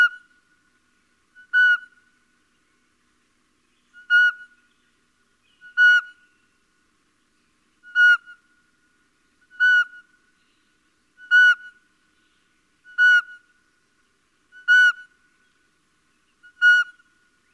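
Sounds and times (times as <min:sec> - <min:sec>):
Little owl repeating a short mewing whistle: 0:01.4 - 0:02.0, 0:04.0 - 0:04.6, 0:05.6 - 0:06.2, 0:07.8 - 0:08.4, 0:09.5 - 0:10.1, 0:11.2 - 0:11.8, 0:12.8 - 0:13.5, 0:14.5 - 0:15.1, 0:16.4 - 0:17.1.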